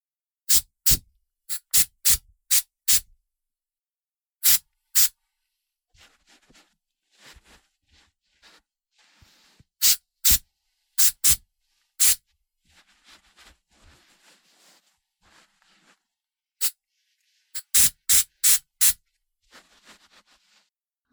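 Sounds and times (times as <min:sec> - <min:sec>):
hair spray hissing in hair styling: 0:00.5 - 0:03.0, 0:04.4 - 0:05.1, 0:09.8 - 0:10.4, 0:11.0 - 0:11.4, 0:12.0 - 0:12.2, 0:17.6 - 0:19.0
soft rustling: 0:05.2 - 0:09.8, 0:10.4 - 0:17.6, 0:19.0 - 0:20.7.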